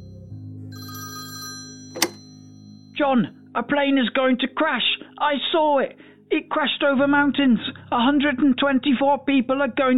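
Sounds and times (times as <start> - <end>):
telephone bell ringing with a metallic trill: 0.7 - 2.8
sharp click: 2.0 - 2.2
speech: 3.0 - 9.9.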